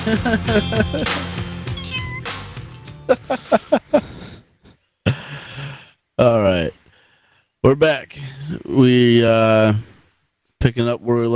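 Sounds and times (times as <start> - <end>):
speech: 0.0 - 1.3, 3.1 - 4.1, 6.2 - 6.8, 7.6 - 9.9, 10.6 - 11.3
laughter: 0.0 - 1.4, 3.0 - 4.4
small kitten meowing: 1.8 - 2.2.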